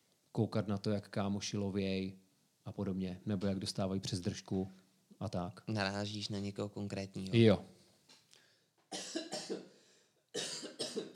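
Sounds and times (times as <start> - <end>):
speech: 0.4 - 7.8
person coughing: 8.9 - 9.8, 10.4 - 11.1.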